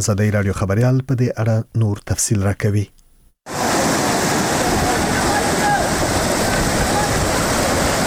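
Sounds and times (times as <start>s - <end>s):
speech: 0.0s - 3.6s
rushing stream water pouring over a washed-out road after flooding: 3.5s - 8.0s.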